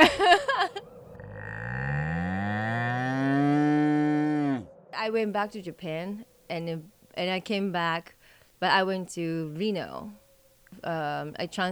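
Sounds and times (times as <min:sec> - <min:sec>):
laughter: 0:00.0 - 0:00.9
cow mooing: 0:01.0 - 0:04.9
speech: 0:05.0 - 0:10.2, 0:10.8 - 0:11.7.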